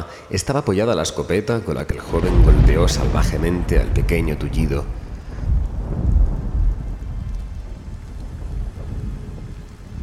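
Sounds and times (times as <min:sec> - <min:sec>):
speech: 0:00.3 - 0:05.0
deep thunder rumbling: 0:02.0 - 0:10.0
thunderstorm rain beating on the window of a small room: 0:02.2 - 0:10.0.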